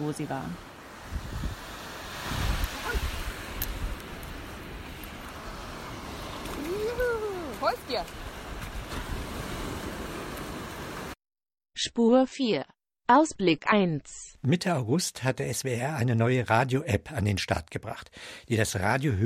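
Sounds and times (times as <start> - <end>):
speech: 0.0 - 1.3, 6.8 - 8.2, 11.8 - 19.2
ocean surf roaring: 0.0 - 11.2
wind: 0.0 - 11.2, 14.5 - 19.2.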